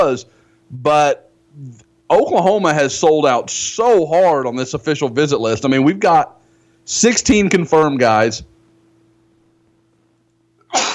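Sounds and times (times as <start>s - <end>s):
speech: 0.0s - 8.5s
quiet room hum: 0.0s - 10.9s
loud sharp sneeze with an inhaled catch: 10.7s - 10.9s.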